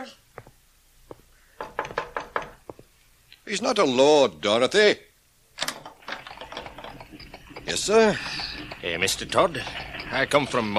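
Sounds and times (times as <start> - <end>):
speech: 0.0 - 0.2, 3.5 - 5.1, 7.7 - 10.7
knuckles knocking on a house door: 1.6 - 2.8.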